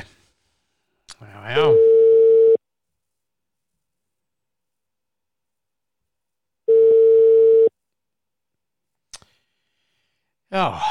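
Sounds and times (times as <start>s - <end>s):
unanswered telephone call signal: 1.8s - 2.6s, 6.7s - 7.7s
speech: 10.6s - 10.8s.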